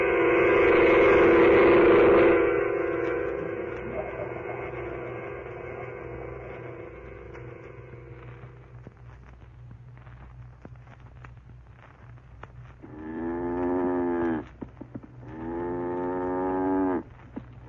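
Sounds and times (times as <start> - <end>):
steady low hum: 0.0 - 17.6
cow bedded down for the night mooing: 12.8 - 14.5, 15.2 - 17.1.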